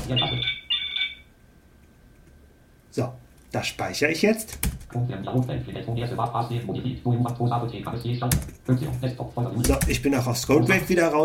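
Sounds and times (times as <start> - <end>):
phone ringtone trilling: 0.0 - 1.4
speech: 0.1 - 0.6, 2.9 - 11.2.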